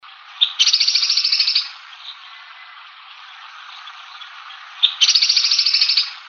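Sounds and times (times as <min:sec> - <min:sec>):
Veniliornis mixtus woodpecker: 0:00.4 - 0:02.3, 0:03.3 - 0:06.2.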